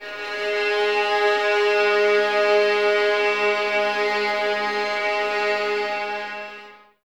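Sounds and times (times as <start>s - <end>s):
eleven-violin string ensemble playing sul ponte on G sharp: 0.0s - 6.9s.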